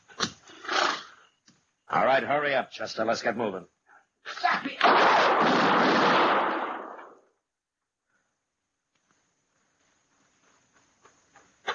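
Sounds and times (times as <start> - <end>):
speech: 1.9 - 4.4
gunshot blast from a gun fired in an alley: 4.8 - 7.2.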